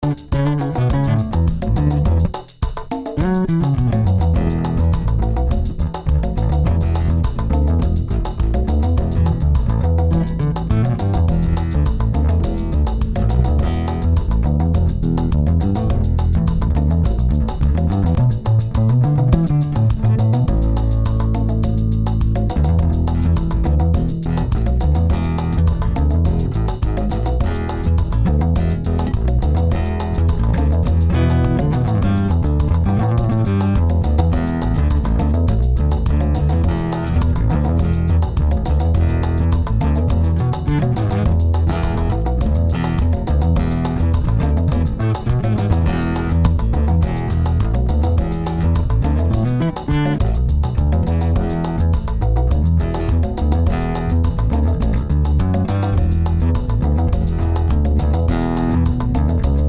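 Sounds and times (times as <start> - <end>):
eight-string bass guitar on active neck pickup played with fingers: 0.0 - 59.6.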